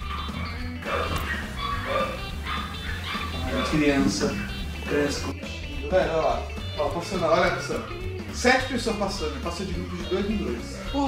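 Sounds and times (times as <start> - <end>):
dog yipping: 0.0 - 5.3, 7.4 - 8.2
passing dog barking: 0.0 - 5.3
speech: 3.7 - 11.0.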